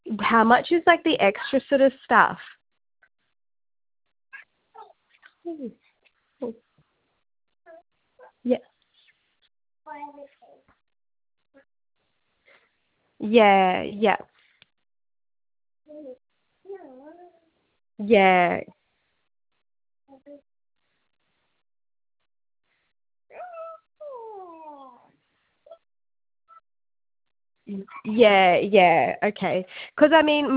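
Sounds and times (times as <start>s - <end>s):
speech: 0.3s - 2.5s, 5.5s - 5.8s, 6.4s - 6.6s, 8.4s - 8.7s, 13.2s - 14.3s, 18.0s - 18.8s, 27.7s - 30.5s
female pet dog whining and whimpering: 23.3s - 25.1s.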